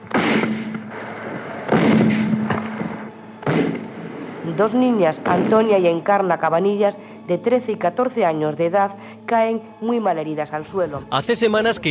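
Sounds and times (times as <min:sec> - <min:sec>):
loud sharp gunshots: 0:00.0 - 0:04.3, 0:05.2 - 0:05.9
hum: 0:00.0 - 0:11.8
speech: 0:04.5 - 0:11.8.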